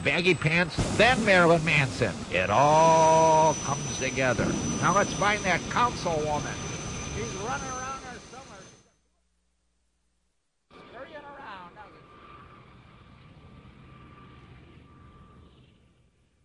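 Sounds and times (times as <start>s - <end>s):
speech: 0.0s - 6.6s, 7.2s - 7.8s
helicopter flying overhead: 0.0s - 8.9s, 10.7s - 16.4s.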